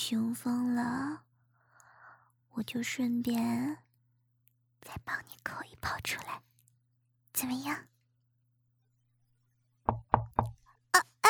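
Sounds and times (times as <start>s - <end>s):
speech: 0.1s - 1.3s, 2.6s - 3.8s, 4.8s - 6.5s, 7.4s - 7.9s
knocking on a door: 9.9s - 10.6s.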